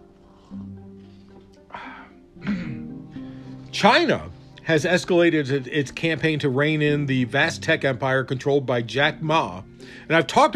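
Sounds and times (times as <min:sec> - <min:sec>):
person clearing throat: 0:02.4 - 0:02.9
speech: 0:03.8 - 0:10.5.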